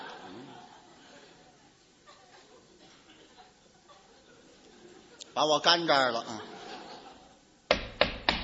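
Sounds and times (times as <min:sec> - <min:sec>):
laughter: 0:00.0 - 0:05.4, 0:06.1 - 0:07.6
speech: 0:05.4 - 0:06.5
knocking on a door: 0:07.7 - 0:08.4.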